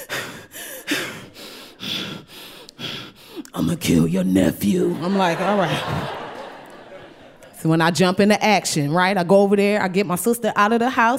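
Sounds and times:
person imitating heavy panting breaths on the phone: 0.0 - 3.5
speech: 3.6 - 6.2, 7.6 - 11.1
laughter: 4.8 - 7.7.

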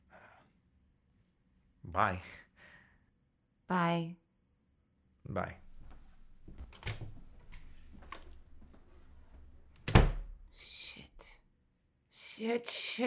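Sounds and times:
speech: 2.0 - 2.4, 3.7 - 4.2, 5.3 - 5.6, 12.4 - 13.0
soft breathy sounds from a person: 2.5 - 3.1
quiet shuffling: 5.6 - 9.8
heavy door slamming shut: 9.8 - 10.4.

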